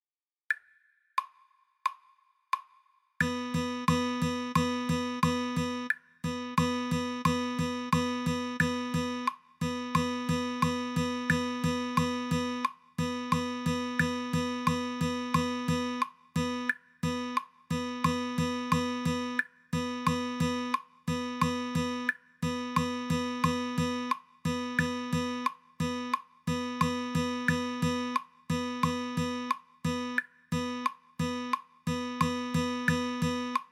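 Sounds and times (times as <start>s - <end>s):
fast rhythm guitar practice: 3.2s - 33.7s.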